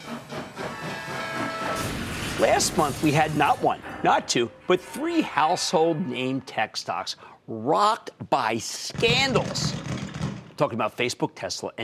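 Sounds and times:
rhythmic chuffing of a steam train: 0.0 - 2.0
speech: 2.4 - 9.9, 10.6 - 11.8.

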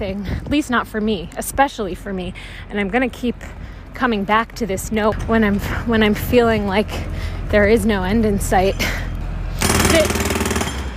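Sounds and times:
speech: 0.0 - 9.1, 9.9 - 10.2
low rumble: 0.0 - 10.6
jackhammer pounding outside: 9.5 - 10.9.

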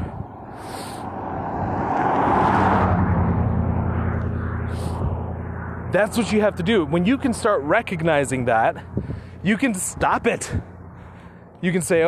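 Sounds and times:
car passing by: 0.4 - 8.0
speech: 5.9 - 10.7, 11.6 - 12.0.

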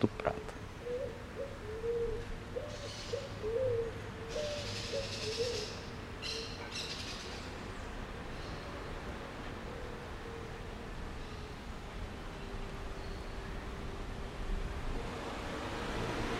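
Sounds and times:
speech: 0.0 - 0.3
steady outdoor hum: 0.0 - 16.3
small birds calling at a street corner: 0.3 - 8.7.

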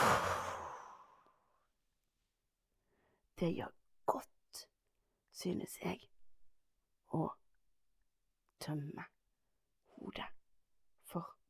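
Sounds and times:
slow deliberate exhale during breathing exercise: 0.0 - 1.3
speech: 3.4 - 4.7, 5.4 - 6.1, 7.1 - 7.4, 8.6 - 9.1, 10.0 - 10.4, 11.1 - 11.4.

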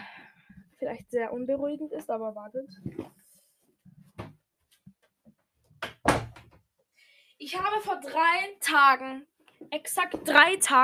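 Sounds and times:
speech: 0.8 - 3.2, 7.5 - 10.8
door thudding and rattling as it closes fully: 6.0 - 6.5.

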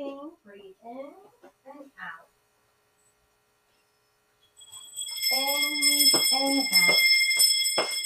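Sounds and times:
person talking: 0.0 - 2.3, 5.3 - 7.1
relaxing bells ringing during a guided breathing session: 4.6 - 8.0.

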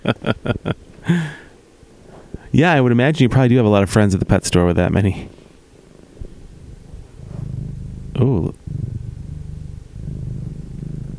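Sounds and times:
speech: 2.6 - 5.4
cat's deep steady purr: 5.8 - 11.1.

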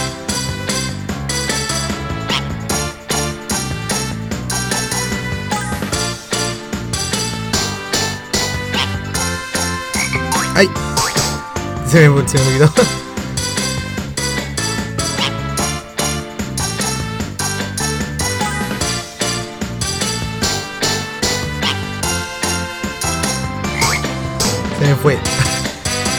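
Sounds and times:
loud busy upbeat video game music with a punchy beat: 0.0 - 26.1
speech: 10.6 - 10.8, 11.9 - 13.1, 25.0 - 25.4
cartoonish frog croak sound effect in a video game: 23.8 - 24.0.

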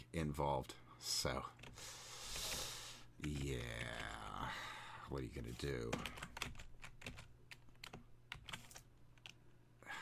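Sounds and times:
speech: 0.1 - 2.0, 3.2 - 6.6
typing on a computer keyboard: 5.6 - 9.4.

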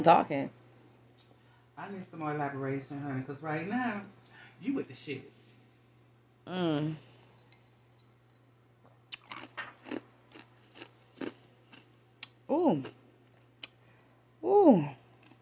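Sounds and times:
speech: 0.0 - 0.6, 1.8 - 5.4, 6.4 - 7.1, 12.5 - 13.0, 14.4 - 15.0
low steady hum: 0.0 - 15.4
crunching of ice cubes being chewed: 9.1 - 13.7.

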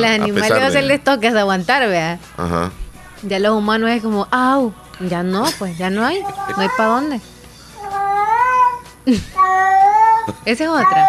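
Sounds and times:
speech: 0.0 - 7.3, 9.0 - 9.7, 10.3 - 11.0
people laughing: 5.4 - 6.9
cat giving long drawn-out wailing meows: 7.8 - 11.0.

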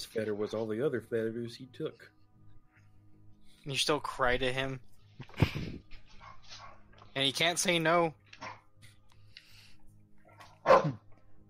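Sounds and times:
speech: 0.0 - 2.2, 3.6 - 5.8, 7.2 - 8.6, 10.6 - 11.0
dog barking: 6.2 - 6.9, 8.4 - 8.6, 10.3 - 11.0.

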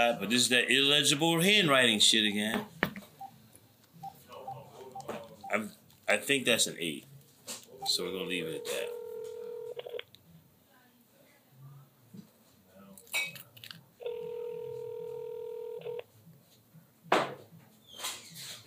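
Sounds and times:
speech: 0.0 - 2.8, 5.5 - 9.0
telephone dialing tones: 7.8 - 10.0, 14.0 - 16.0.

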